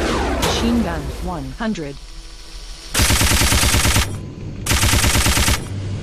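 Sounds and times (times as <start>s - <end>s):
speech: 0.6s - 2.2s
machine gun firing at moving ships in a video game: 2.9s - 5.8s.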